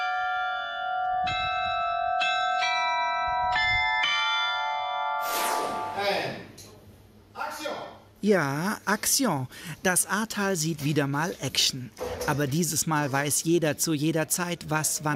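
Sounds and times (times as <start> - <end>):
carillon tower bells playing a melody: 0.0 - 6.3
speech: 8.2 - 15.1.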